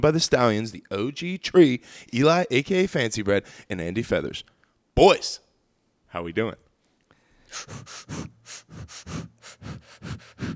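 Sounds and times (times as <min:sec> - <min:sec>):
speech: 0:00.0 - 0:05.4, 0:06.1 - 0:06.6, 0:07.5 - 0:10.5
forceful rhythmic breathing from a dragon's breath breathing exercise: 0:01.8 - 0:02.2, 0:03.4 - 0:03.8, 0:06.9 - 0:10.5.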